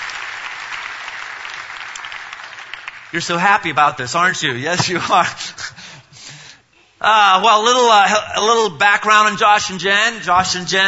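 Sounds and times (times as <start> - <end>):
audience applause welcoming guests: 0.0 - 3.1
speech: 3.1 - 5.7, 7.0 - 10.8.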